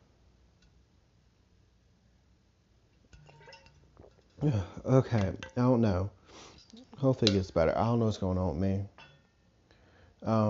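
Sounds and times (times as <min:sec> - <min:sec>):
glass clinking: 0:03.0 - 0:07.6, 0:08.9 - 0:09.6
speech: 0:04.4 - 0:08.9, 0:10.2 - 0:10.4.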